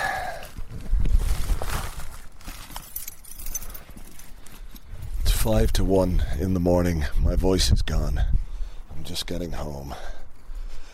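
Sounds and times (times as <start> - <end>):
rustling: 0.4 - 5.4
keys jangling: 2.5 - 5.2
speech: 5.4 - 8.4, 9.0 - 10.2.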